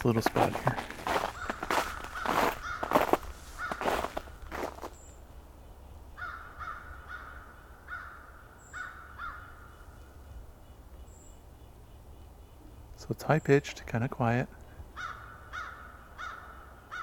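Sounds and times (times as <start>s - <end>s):
speech: 0.0s - 1.0s, 13.3s - 14.6s
crow caws: 0.8s - 5.0s, 6.1s - 10.8s, 14.7s - 17.0s
crows cawing: 1.0s - 4.9s, 6.2s - 9.9s, 14.9s - 17.0s.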